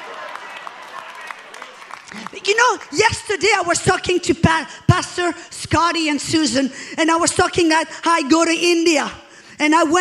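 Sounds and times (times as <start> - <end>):
scattered clapping from church audience during a sermon: 0.0 - 3.0
speech: 2.1 - 9.9.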